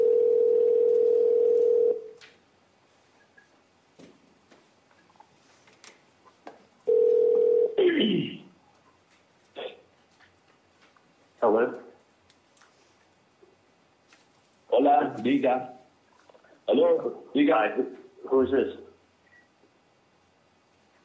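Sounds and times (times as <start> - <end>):
telephone dial tone on a wiretapped phone call recording: 0.0 - 2.1, 6.9 - 7.8
speech: 15.2 - 15.8, 16.7 - 18.8.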